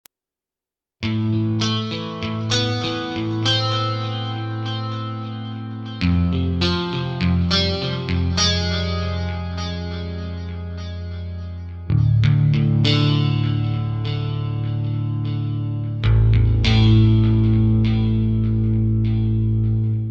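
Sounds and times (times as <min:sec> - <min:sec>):
OASYS synthesized guitar: 0:01.0 - 0:20.0.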